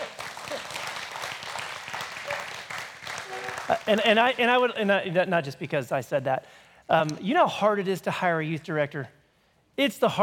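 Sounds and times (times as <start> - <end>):
church crowd applauding: 0.0 - 4.6
speech: 3.7 - 9.2, 9.8 - 10.2.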